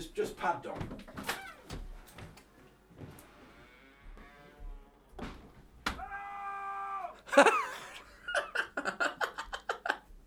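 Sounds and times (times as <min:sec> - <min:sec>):
speech: 0:00.0 - 0:01.1, 0:07.4 - 0:07.6
muffled shouting through a studio wall: 0:05.8 - 0:07.3
people laughing: 0:07.2 - 0:10.2.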